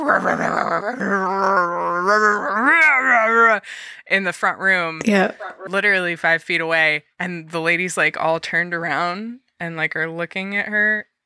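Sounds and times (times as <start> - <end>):
voice imitating dogs growling during rough play in a front room: 0.0 - 3.6
speech: 0.0 - 11.1.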